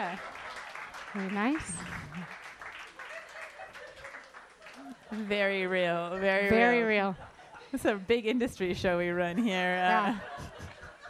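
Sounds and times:
speech: 0.0s - 0.4s, 1.1s - 2.5s, 4.8s - 10.6s
crowd clapping: 0.0s - 5.4s
laughter: 2.9s - 5.3s, 9.9s - 11.0s.

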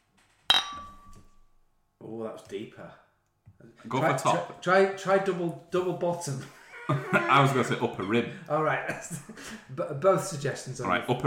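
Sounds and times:
soft subtle clink of glass: 0.5s - 1.5s
speech: 2.1s - 3.0s, 3.6s - 11.2s
laughter: 6.3s - 9.9s.

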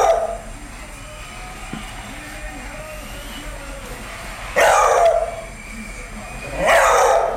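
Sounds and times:
beagle baying barks: 0.0s - 0.5s, 4.6s - 5.4s, 6.6s - 7.3s
faint whining: 0.0s - 7.3s.

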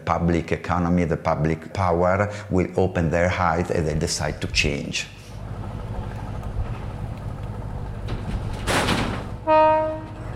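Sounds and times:
speech: 0.1s - 5.2s
ferry engine rumble departing on Lake Como: 3.6s - 10.3s
deep ferry horn blast: 9.4s - 10.3s.

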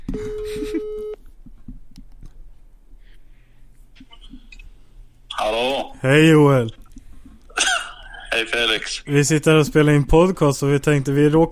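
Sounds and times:
faint beeps: 0.2s - 1.2s
ringing tone of an outgoing telephone call: 0.2s - 1.2s
speech: 6.0s - 6.8s, 8.4s - 11.5s.

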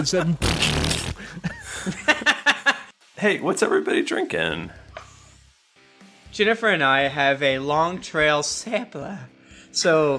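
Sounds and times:
speech: 0.0s - 2.0s, 3.2s - 4.8s, 6.4s - 10.1s
short sputtering fart noises: 0.4s - 1.4s
laughter: 1.2s - 2.9s.

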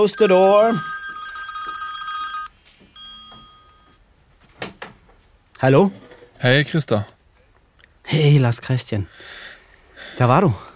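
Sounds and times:
speech: 0.0s - 0.9s, 5.6s - 7.2s, 8.1s - 10.7s
telephone ringing with a warbling electronic tone: 0.0s - 4.0s.

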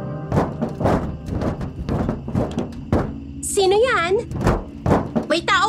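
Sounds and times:
heavy footsteps thudding on a roof at night: 0.3s - 3.4s, 4.3s - 5.5s.

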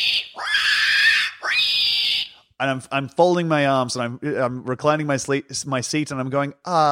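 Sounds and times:
pig squealing: 0.0s - 2.4s
speech: 2.6s - 6.9s.

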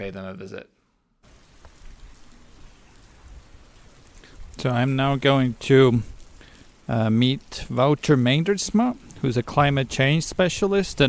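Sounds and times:
speech: 0.0s - 0.8s, 4.6s - 6.1s, 6.9s - 11.0s
steady rain falling: 1.2s - 11.0s
raindrops pattering on a surface: 1.3s - 2.3s.

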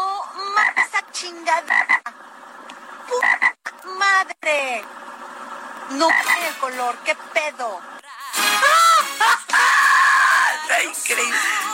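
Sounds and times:
frog croaking: 0.4s - 3.9s, 5.0s - 6.6s
speech: 1.2s - 2.0s, 4.1s - 5.0s, 5.9s - 7.9s, 10.7s - 11.7s
laughter: 8.2s - 11.7s.

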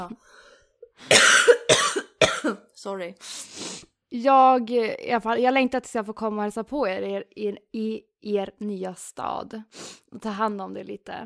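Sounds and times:
speech: 0.0s - 1.5s, 2.8s - 3.4s, 4.1s - 11.2s
person coughing harshly: 1.0s - 2.6s.

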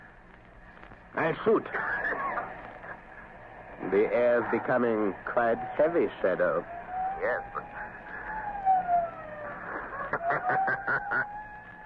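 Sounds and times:
faint road rumble: 0.0s - 11.8s
speech: 1.2s - 2.2s, 3.9s - 7.8s
laughter: 1.6s - 3.3s, 9.5s - 11.4s
police siren wailing: 4.4s - 11.8s.

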